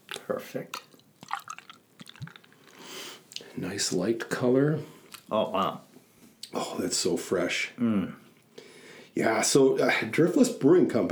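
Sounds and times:
pale ale pouring into a glass: 0.1 - 2.8
speech: 0.3 - 0.9, 3.6 - 5.9, 6.5 - 8.2, 9.2 - 11.1.

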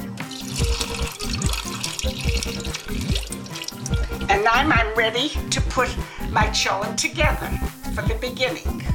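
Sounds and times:
rinse water swished and poured out of beans in a pot: 0.2 - 4.3
speech: 4.4 - 8.8.

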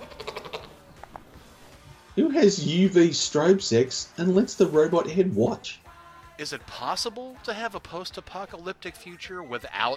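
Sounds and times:
goat bleating: 0.0 - 0.8
speech: 2.2 - 5.8, 6.4 - 9.9.

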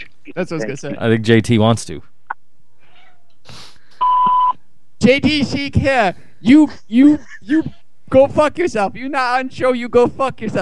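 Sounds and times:
speech: 0.3 - 2.1, 5.0 - 10.6
voicemail beep after recorded greeting: 4.0 - 4.6.

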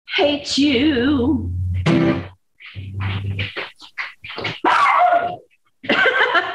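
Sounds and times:
speech: 0.1 - 3.7
dog barking and yipping: 4.2 - 5.5
laughter: 5.8 - 6.5.

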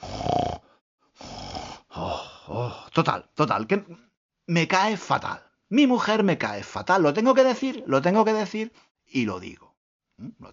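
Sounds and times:
man imitating his wife's nighttime snoring: 0.0 - 2.9
speech: 3.0 - 10.5.

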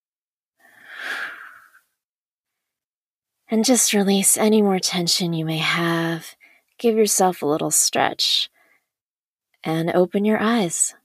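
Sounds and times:
slow deep breath in and out during a guided meditation: 0.6 - 1.9, 8.5 - 8.9
speech: 3.5 - 8.6, 9.6 - 11.0.

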